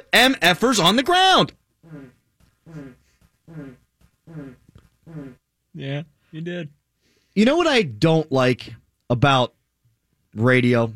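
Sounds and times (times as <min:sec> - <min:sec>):
speech: 0:00.1 - 0:02.1, 0:02.7 - 0:06.8, 0:07.4 - 0:09.6, 0:10.3 - 0:10.9
loud buzzy farts: 0:01.8 - 0:05.4.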